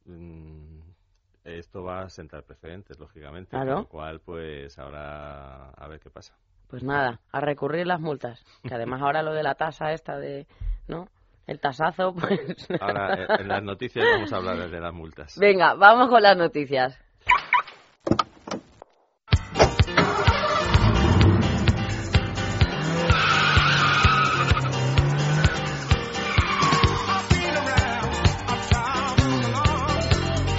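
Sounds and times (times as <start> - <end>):
speech: 1.5 - 17.0
laughter: 12.2 - 14.7
race car tires squealing while skidding: 19.6 - 29.8
race car engine roaring: 19.6 - 30.4.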